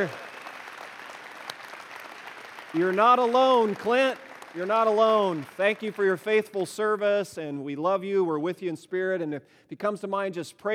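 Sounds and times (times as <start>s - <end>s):
speech: 0.0s - 0.2s, 2.7s - 10.7s
audience applause: 0.0s - 6.4s.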